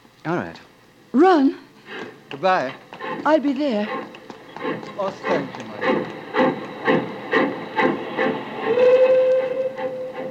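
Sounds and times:
speech: 0.2 - 1.6, 2.4 - 6.2
departing steam train chugging: 1.8 - 10.2
steam train whistle: 5.8 - 10.2.

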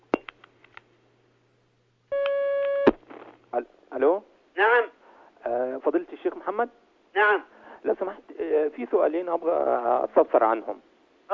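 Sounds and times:
telephone line tone as a listener's phone call connects: 2.1 - 2.9
speech: 3.6 - 11.3.

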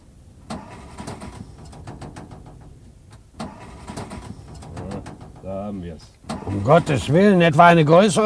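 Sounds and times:
broken-down car engine cranking without catching: 0.0 - 8.2
speech: 5.5 - 8.2.

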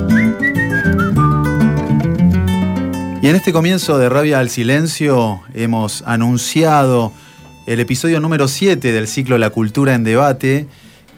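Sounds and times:
person whistling a lively tune: 0.0 - 1.8
steady musical backing: 0.0 - 11.1
speech: 3.2 - 11.1.

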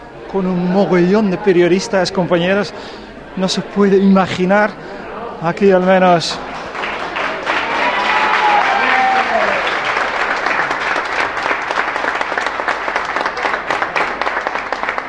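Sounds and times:
speech: 0.3 - 6.5
sustained applause in a neighbours' association office: 6.5 - 15.0.

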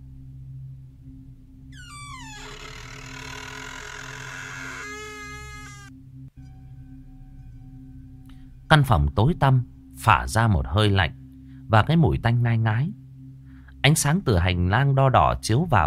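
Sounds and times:
old long-shut door slowly creaking open: 1.8 - 5.9
speech: 8.7 - 13.0, 13.8 - 15.8.

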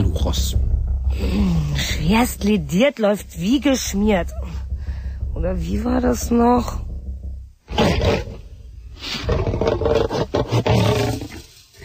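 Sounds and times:
speech: 0.0 - 4.6, 5.4 - 6.8
loose lion roaring: 7.7 - 11.8.

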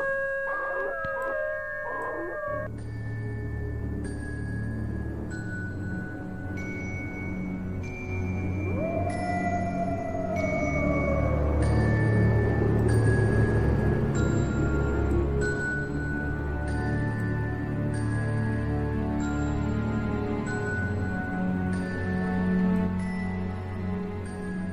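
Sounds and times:
wolf-like howl: 0.0 - 2.7, 8.4 - 14.3
steady sustained tones: 0.0 - 24.7.

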